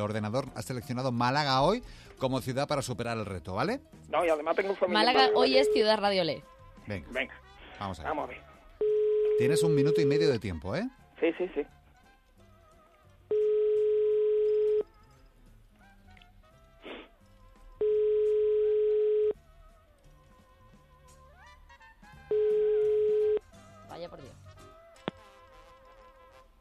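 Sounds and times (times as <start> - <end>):
speech: 0.0 - 11.8
telephone ringback tone while calling a number: 5.1 - 6.0, 8.8 - 10.4, 13.3 - 14.9, 17.8 - 19.4, 22.3 - 23.4.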